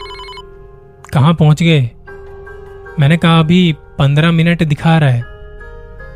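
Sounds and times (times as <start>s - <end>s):
phone ringing with a bright electronic tone: 0.0s - 0.5s
speech: 1.2s - 2.0s, 3.0s - 5.3s.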